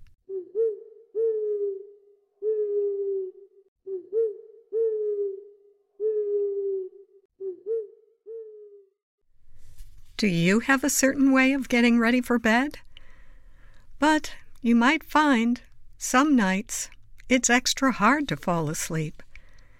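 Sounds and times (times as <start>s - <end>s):
owl hooting: 0.3s - 8.9s
speech: 10.2s - 12.8s, 14.0s - 19.2s.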